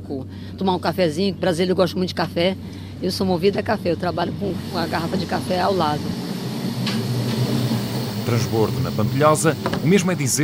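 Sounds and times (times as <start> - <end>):
Intercidades long-distance intercity train rumbling in motion: 0.0 - 10.4
speech: 0.1 - 6.2, 8.3 - 10.4
faint brief clicks from the rails: 6.1 - 8.8.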